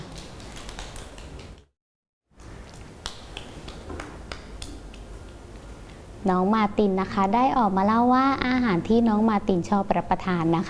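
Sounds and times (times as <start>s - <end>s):
group of children clapping hands: 0.0s - 1.6s, 3.0s - 5.0s
speech: 6.2s - 10.6s.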